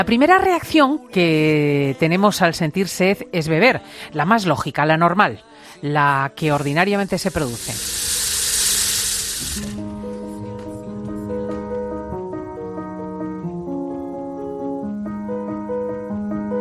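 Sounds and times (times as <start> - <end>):
speech: 0.0 - 8.2
sustained gentle music: 0.0 - 16.5
water running from a tap: 6.6 - 9.8.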